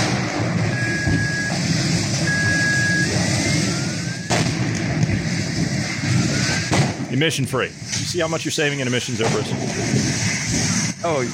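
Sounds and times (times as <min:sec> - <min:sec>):
sharp bang from a burning electric car: 0:00.0 - 0:08.1, 0:09.1 - 0:10.9
battery cells of a burning electric car combusting in a roaring blaze: 0:00.0 - 0:11.3
faint whistling tones: 0:00.7 - 0:04.4
speech: 0:07.2 - 0:10.3, 0:11.0 - 0:11.3.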